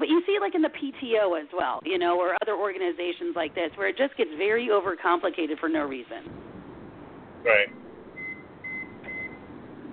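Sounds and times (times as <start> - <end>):
low hum: 0.0 - 9.9
speech: 0.4 - 6.4, 7.4 - 7.8
electronic beeping: 7.7 - 9.5.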